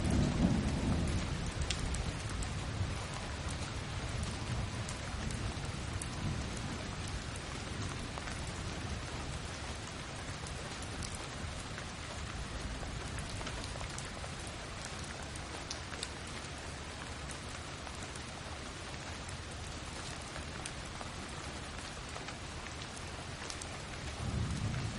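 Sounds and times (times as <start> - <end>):
steady rain with fine drops pattering: 0.0 - 24.9.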